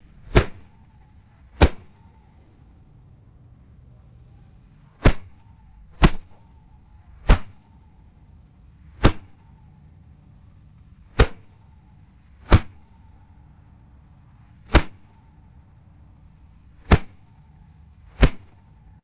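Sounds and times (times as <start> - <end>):
dull leathery fist impacts on a football: 0.1 - 0.8, 1.6 - 2.0, 5.0 - 6.5, 7.2 - 7.7, 9.0 - 9.4, 11.1 - 11.6, 12.4 - 12.9, 14.6 - 15.2, 16.8 - 17.3, 18.1 - 18.7.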